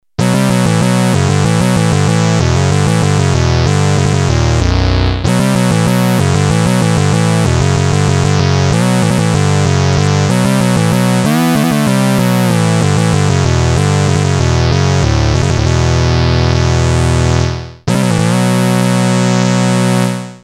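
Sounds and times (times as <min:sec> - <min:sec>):
Moog Minitaur synthesizer: 0:00.2 - 0:20.4.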